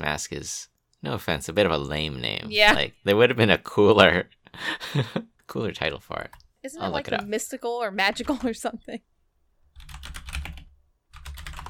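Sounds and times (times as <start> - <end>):
speech: 0.0 - 9.1
clacky typing on a computer keyboard: 9.8 - 11.6.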